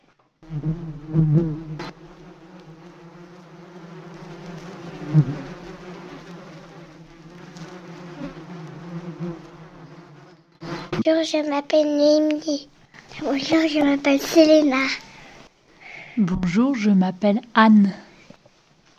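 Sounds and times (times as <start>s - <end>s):
bees buzzing inside an educational observation hive: 0.4s - 11.1s
speech: 0.5s - 1.9s, 11.2s - 15.1s, 16.2s - 18.0s.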